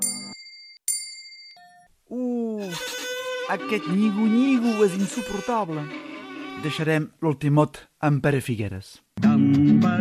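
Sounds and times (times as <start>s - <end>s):
small bell ringing: 0.0s - 1.9s
speech: 2.1s - 2.9s, 3.5s - 9.9s.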